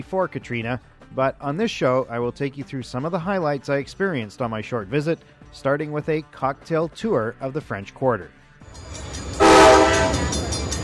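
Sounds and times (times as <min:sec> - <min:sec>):
speech: 0:00.0 - 0:08.9
low rail rumble of a passing train: 0:08.7 - 0:10.8
train horn blast near railway tracks on the banks of the Mississippi River in New Orleans: 0:09.3 - 0:10.4.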